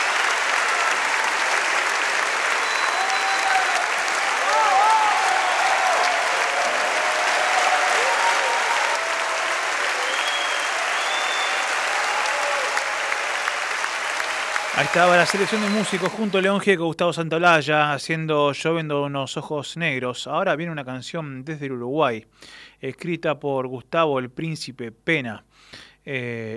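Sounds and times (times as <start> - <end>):
cheers: 0.0 - 16.5
large audience clapping: 0.0 - 16.6
whistles: 2.5 - 3.9, 9.9 - 11.8, 14.8 - 16.2
speech: 14.8 - 26.5.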